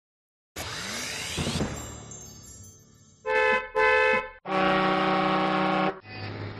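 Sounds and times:
car horns honking to salute a patron saint in San Lorenzo del Escorial: 3.2 - 6.0.

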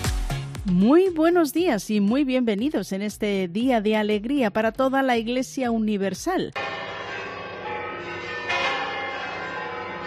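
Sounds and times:
speech: 0.7 - 6.8
church bells pealing in celebration: 6.6 - 10.0.

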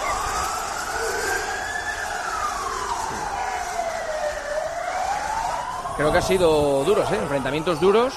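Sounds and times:
rough wash of street noise during football supporter clashes: 0.0 - 8.1
wailing siren during violent street clashes between football supporters: 0.0 - 8.1
speech: 6.0 - 8.1.

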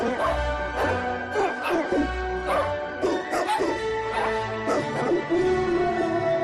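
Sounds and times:
dog barking: 0.2 - 5.3.

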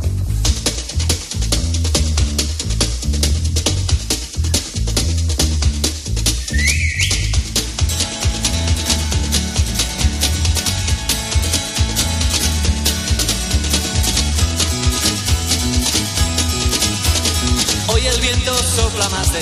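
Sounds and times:
upbeat pop track with punchy drum beat and bouncing bass line: 0.0 - 19.4
whistled melody opening a pop song: 6.4 - 7.6.

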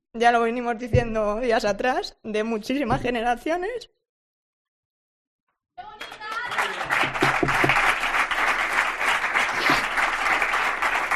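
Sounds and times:
speech: 0.2 - 4.0
large audience applauding during emotional speech: 5.8 - 11.1.

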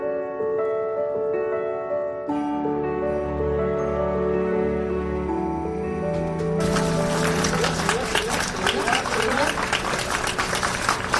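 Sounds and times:
sustained melodic music passage: 0.0 - 11.1
crowd applauding as an actress's coffin arrives at the Teatro Español: 6.6 - 11.1.

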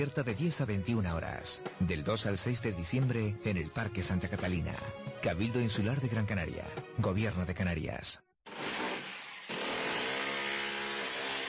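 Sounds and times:
speech: 0.0 - 8.3
power drill whirring: 8.5 - 11.4.

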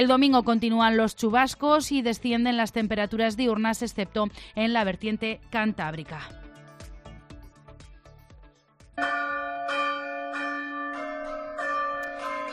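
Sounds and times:
speech: 0.0 - 6.4
church bells in Navarra Spain ringing a melody to warn of climate events: 9.0 - 12.5.

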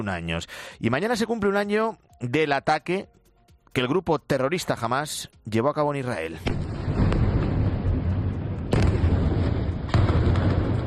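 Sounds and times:
speech: 0.0 - 6.7
heavy explosions with rolling echo: 6.4 - 10.8.

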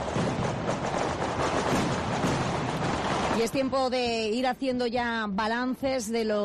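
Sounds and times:
festival firecracker string explosions: 0.0 - 3.8
speech: 3.4 - 6.4.

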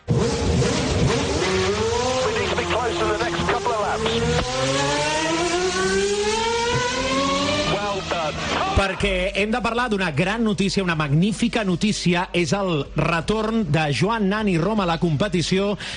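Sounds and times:
racing car engine revving through gear changes: 0.0 - 9.0
speech: 8.8 - 15.9.

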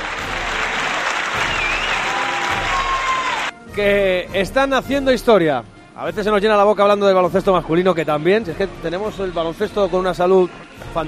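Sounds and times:
crowd applause for a women's basketball team winning the European championship: 0.0 - 3.5
speech: 3.8 - 11.0.

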